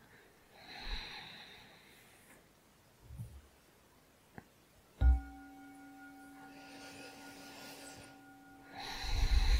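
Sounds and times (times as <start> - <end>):
slow deep abdominal breaths through the nose: 0.5 - 2.4, 6.5 - 9.5
single clear chime: 5.0 - 9.5.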